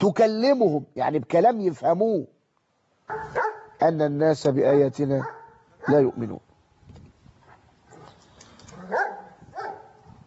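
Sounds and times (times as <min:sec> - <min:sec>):
speech: 0:00.0 - 0:02.4, 0:03.1 - 0:06.4
low noise: 0:00.0 - 0:10.2
street dog, Dalmatian and third breed barking: 0:03.1 - 0:03.8, 0:05.2 - 0:06.1, 0:08.8 - 0:10.0.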